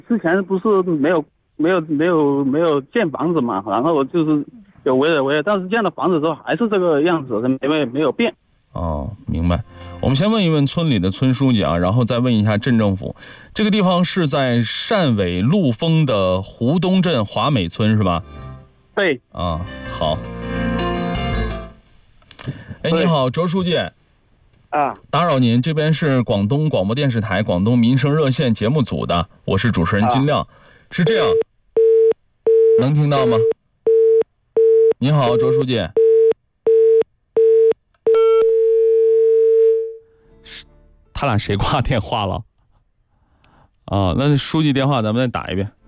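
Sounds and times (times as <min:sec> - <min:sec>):
speech: 0:00.1 - 0:20.6, 0:22.4 - 0:24.0, 0:24.7 - 0:31.5, 0:32.8 - 0:33.6, 0:35.0 - 0:36.0, 0:41.2 - 0:42.5, 0:43.9 - 0:45.8
phone line busy tone after a hang-up: 0:31.2 - 0:40.0.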